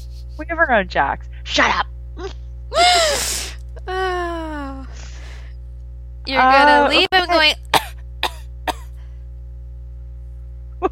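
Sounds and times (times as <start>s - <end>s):
steady low hum: 0.0s - 10.9s
speech: 0.4s - 4.2s, 6.3s - 7.6s
sharp coughs: 7.7s - 9.0s.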